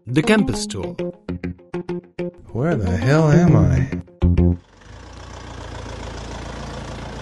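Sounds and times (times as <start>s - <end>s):
speech: 0.1s - 1.1s, 2.6s - 4.1s
bus engine idling at a bus stop: 4.6s - 7.2s.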